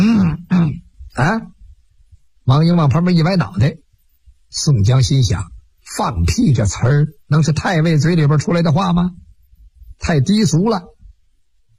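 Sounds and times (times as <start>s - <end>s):
man clearing his throat and coughing: 0.0s - 0.9s
speech: 1.2s - 1.5s, 2.5s - 3.8s, 4.5s - 9.2s, 10.0s - 10.9s.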